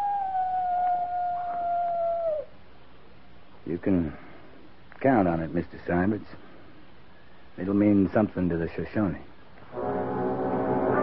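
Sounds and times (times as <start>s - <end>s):
coyote howling: 0.0s - 2.6s
speech: 3.7s - 4.3s, 5.0s - 6.4s, 7.6s - 10.1s.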